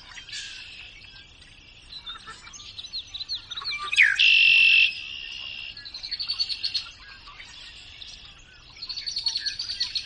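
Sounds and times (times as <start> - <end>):
Red-winged Blackbird song: 0.0 - 10.0.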